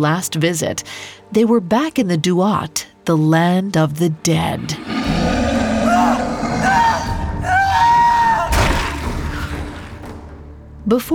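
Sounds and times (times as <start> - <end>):
speech: 0.0 - 5.4, 10.9 - 11.1
distant anguished scream: 4.8 - 9.8.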